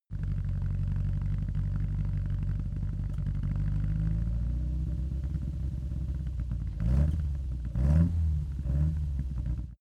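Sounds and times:
Opel Kadett car engine idling with small acceleration: 0.1s - 9.8s.

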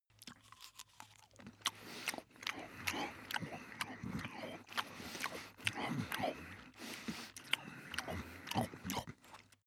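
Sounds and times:
dog breathing long: 1.8s - 8.9s.

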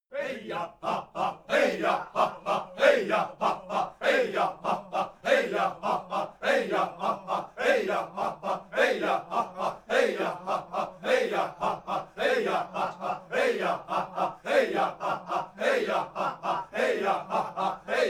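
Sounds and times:
simple chants: 0.1s - 18.0s.

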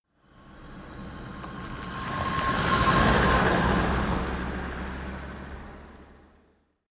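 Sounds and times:
car driving by with a howl: 0.2s - 6.6s.

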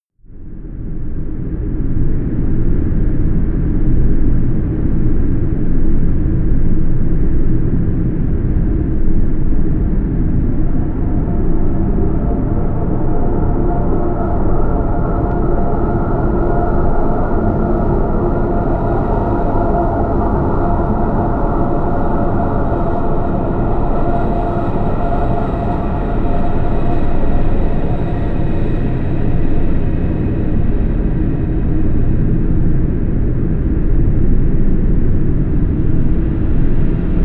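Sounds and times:
drone: 0.4s - 37.2s.

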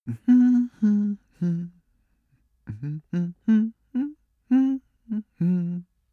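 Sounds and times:
cartoon male hum sequence: 0.1s - 1.8s, 2.7s - 5.8s.

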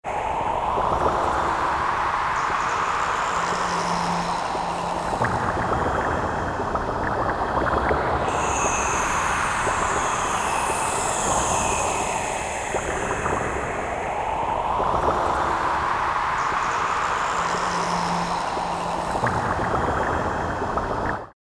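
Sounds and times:
psychedelic ambient music layer: 0.1s - 21.3s.

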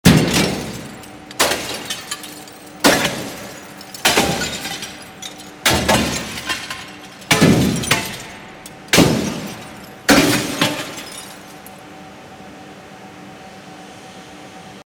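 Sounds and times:
glass breaking: 0.0s - 11.8s.

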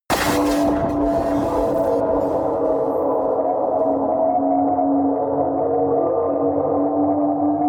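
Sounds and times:
electronic stab: 0.1s - 4.2s
drones: 0.1s - 7.5s.

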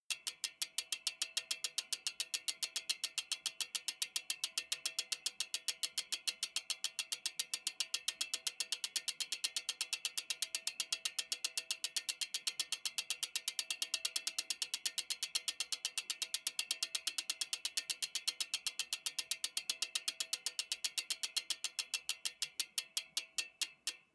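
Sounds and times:
BMX bike freewheel clicking very slowly: 0.1s - 24.1s.

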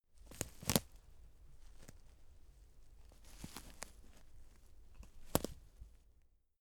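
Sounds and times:
stepping on twigs: 0.2s - 2.4s, 3.1s - 5.8s.

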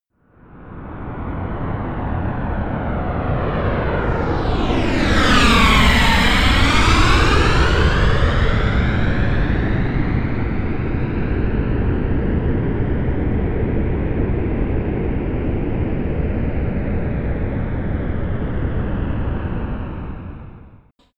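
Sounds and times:
Airbus A320 plane flyby close: 0.4s - 20.7s.

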